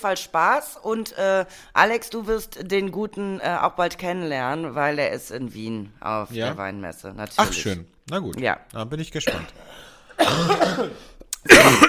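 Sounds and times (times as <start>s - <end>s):
speech: 0.0s - 11.8s
person coughing: 7.4s - 7.8s, 9.3s - 11.8s.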